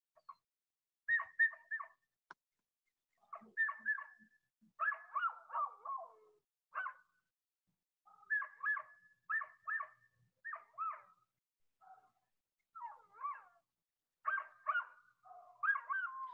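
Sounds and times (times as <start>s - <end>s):
dog barking on a played back recording: 3.3s - 4.2s, 4.8s - 6.2s, 6.8s - 7.1s, 8.1s - 11.2s, 11.8s - 12.2s, 12.8s - 13.6s, 14.2s - 16.3s.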